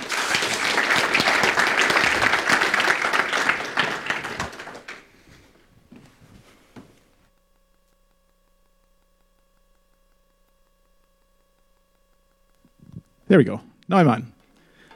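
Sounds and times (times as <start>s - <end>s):
audience applause: 0.0s - 5.1s
speech: 13.3s - 14.4s.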